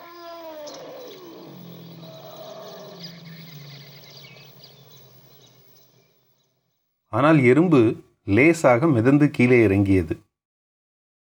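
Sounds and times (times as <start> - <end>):
elephant trumpeting in pain: 0.0 - 5.6
speech: 7.1 - 10.2.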